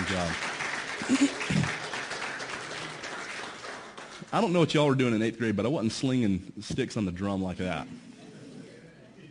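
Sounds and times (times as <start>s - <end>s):
audience applause for the band: 0.0s - 4.3s
speech: 0.1s - 1.5s, 4.3s - 8.1s.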